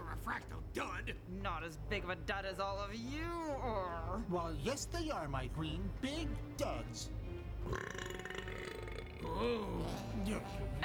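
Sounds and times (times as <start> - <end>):
speech: 0.2 - 8.2, 9.3 - 10.8
long loud deep croaky burp: 7.6 - 10.1.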